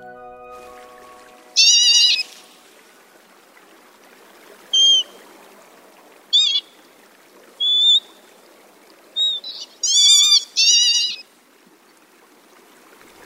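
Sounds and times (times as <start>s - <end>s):
northern lapwings giving plaintive kitten-like mewing calls from rice paddies: 1.6s - 2.3s, 6.4s - 6.6s, 9.2s - 11.2s.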